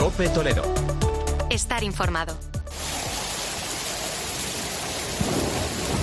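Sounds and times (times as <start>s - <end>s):
speech: 0.2s - 0.9s, 1.5s - 2.5s
heavy rain during a night storm over Toledo and Sonseca: 2.7s - 6.0s
low rumble of thunder: 4.9s - 6.0s.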